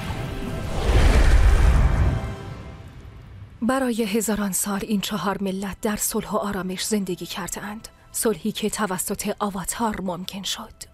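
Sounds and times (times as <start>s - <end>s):
low rumble beneath a wind gust: 0.0s - 3.9s
wind whoosh: 0.3s - 2.9s
speech: 3.6s - 10.9s.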